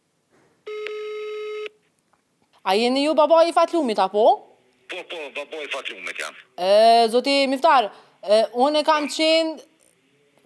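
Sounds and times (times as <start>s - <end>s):
quiet telephone line noise: 0.6s - 2.0s, 4.6s - 6.6s
telephone ringing tone while placing a call: 0.7s - 1.7s
speech: 2.6s - 9.7s.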